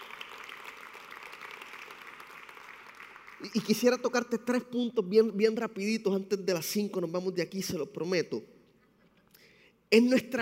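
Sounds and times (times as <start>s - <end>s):
crowd applauding: 0.0s - 4.0s
speech: 3.4s - 8.5s, 9.9s - 10.4s.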